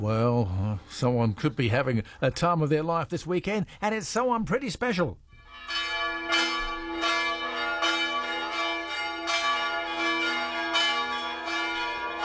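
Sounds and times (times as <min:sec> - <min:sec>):
speech: 0:00.0 - 0:05.9
church bells pealing: 0:05.4 - 0:12.2.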